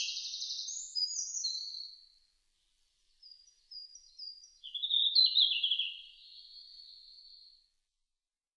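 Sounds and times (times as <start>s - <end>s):
red-flanked bluetail singing warbled phrases: 0.0s - 2.1s, 3.1s - 7.6s.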